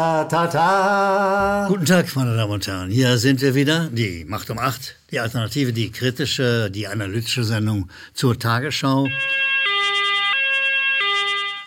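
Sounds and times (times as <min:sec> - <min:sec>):
speech: 0:00.0 - 0:09.4
two-tone hi-lo siren: 0:09.1 - 0:11.6.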